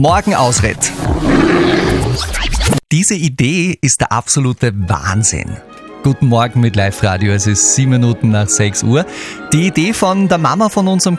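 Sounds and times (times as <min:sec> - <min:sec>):
speech: 0:00.0 - 0:11.1
deep growling bear roar: 0:00.8 - 0:02.2.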